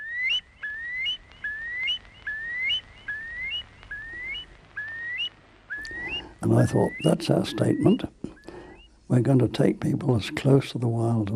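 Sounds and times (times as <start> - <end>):
curlew giving clear whistled notes: 0.0 - 9.0
faint hiss: 0.0 - 11.3
speech: 6.4 - 8.2, 9.1 - 11.3.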